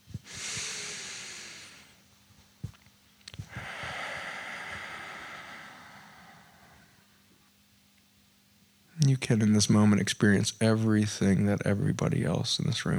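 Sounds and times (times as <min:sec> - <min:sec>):
group in a room taking a deep breath together: 0:00.2 - 0:02.0, 0:03.4 - 0:07.4
speech: 0:09.1 - 0:12.9.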